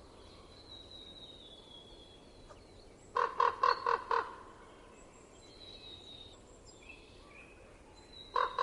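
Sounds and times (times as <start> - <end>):
common raven croaking in winter in Estonia: 3.2 - 4.4, 8.4 - 8.6.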